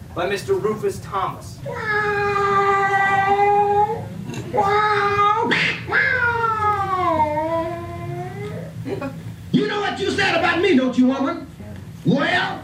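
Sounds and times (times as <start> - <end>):
speech: 0.2 - 2.6, 4.5 - 5.2, 9.0 - 11.4
cat yowls sung in a song: 1.6 - 8.8.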